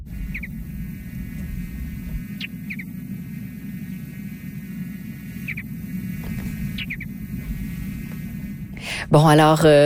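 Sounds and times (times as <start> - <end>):
mountain bluebird giving soft short chirps: 0.0 - 3.1, 5.2 - 7.8
steady low rumbling hum: 0.0 - 9.8
speech: 9.1 - 9.8.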